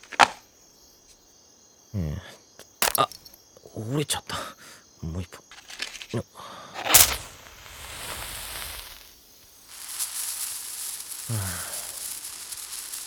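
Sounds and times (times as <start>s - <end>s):
small senko hanabi Japanese sparkler sizzling: 2.8s - 3.2s, 5.5s - 6.2s, 6.8s - 13.0s
speech: 3.8s - 5.4s, 6.1s - 6.6s.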